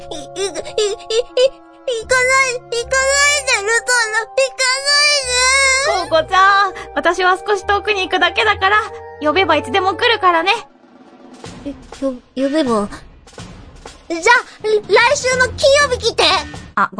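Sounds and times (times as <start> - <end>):
person crying and sobbing loudly in long wavering wails: 0.0 - 7.0
speech: 0.0 - 10.8, 11.6 - 13.1, 14.1 - 16.9.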